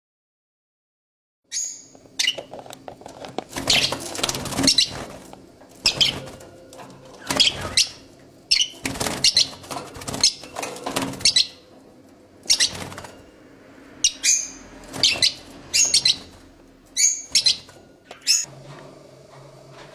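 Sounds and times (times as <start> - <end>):
Agapornis pullaria: 1.5 - 2.5, 3.6 - 5.2, 5.8 - 11.7, 12.4 - 13.4, 14.0 - 18.5.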